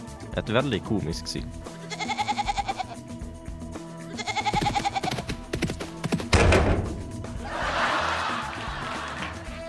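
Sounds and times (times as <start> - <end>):
speech: 0.4 - 1.8
fainting goat bleating: 1.7 - 3.0, 4.1 - 5.3
heavy thud: 6.2 - 7.3
laughter: 7.4 - 9.6.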